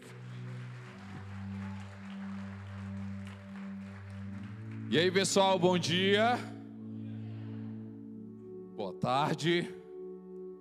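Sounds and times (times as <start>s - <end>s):
crowd applauding: 0.0s - 6.4s
sustained keyboard chords: 0.0s - 10.5s
speech: 4.9s - 6.5s, 9.0s - 9.8s.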